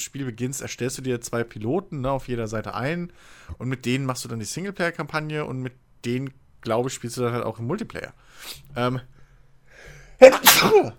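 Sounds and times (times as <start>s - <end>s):
speech: 0.0s - 9.1s, 9.8s - 10.9s
person sneezing: 10.2s - 10.9s.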